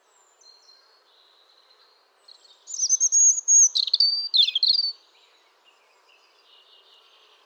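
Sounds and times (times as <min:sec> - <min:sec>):
European robin Erithacus rubecula song: 0:02.7 - 0:05.0.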